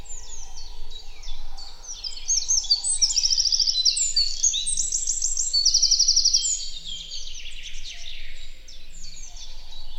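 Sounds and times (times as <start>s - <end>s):
Eurasian wren Troglodytes troglodytes singing a high rapid warble with buzzy trills: 0.0s - 9.9s.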